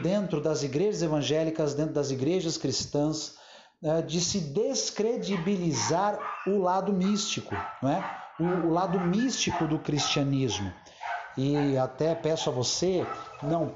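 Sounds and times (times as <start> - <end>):
speech: 0.0 - 13.7
dogs barking in the background: 5.0 - 13.7.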